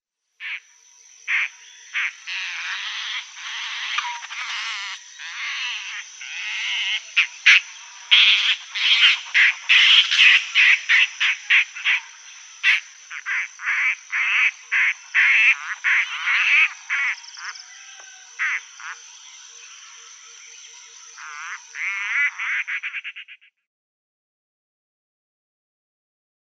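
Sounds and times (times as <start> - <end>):
adult Broad-billed Roller calls: 1.3 - 19.0, 21.2 - 23.6.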